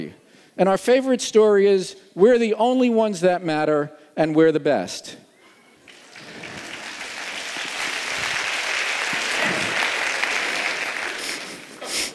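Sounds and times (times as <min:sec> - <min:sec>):
speech: 0:00.0 - 0:05.2
audience applauding with many hands clapping: 0:05.8 - 0:12.1.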